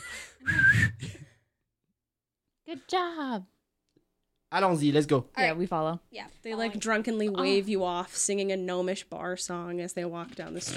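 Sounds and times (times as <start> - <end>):
breathy failed attempt at human whistling: 0.0 - 1.4
speech: 2.8 - 3.6, 4.5 - 10.7.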